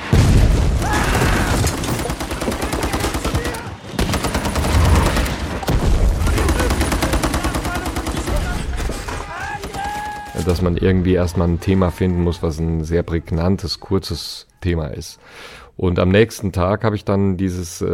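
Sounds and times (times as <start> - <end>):
heavy booming explosions in a film battle scene: 0.0 - 2.0, 4.0 - 7.0
rapid bursts of gunfire in a film battle scene: 1.5 - 10.1
speech: 10.5 - 17.9.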